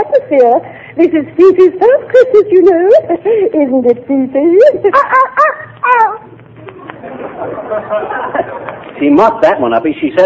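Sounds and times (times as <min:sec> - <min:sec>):
speech: 0:00.1 - 0:05.5, 0:07.2 - 0:10.2
small dog yapping in a busy post office: 0:04.9 - 0:06.3
laughter: 0:04.9 - 0:09.0.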